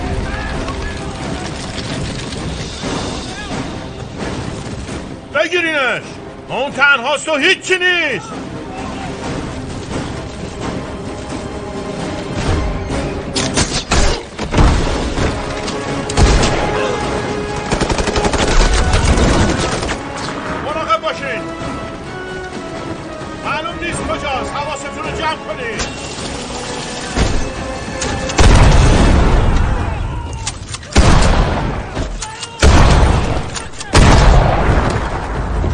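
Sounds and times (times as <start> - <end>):
tense musical score: 0.0 - 35.7
speech: 5.4 - 8.5
loud sharp gunshots in bursts: 17.5 - 20.4, 28.3 - 29.6, 30.9 - 35.7.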